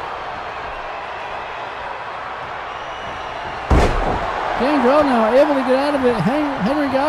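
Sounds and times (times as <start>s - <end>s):
wrestler slammed onto the mat in a wrestling scoop slam: 3.7s - 4.4s
speech: 4.6s - 7.0s.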